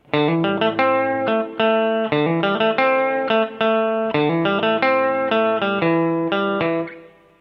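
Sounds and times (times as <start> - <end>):
clean electric guitar on bridge pickup: 0.0 - 7.3.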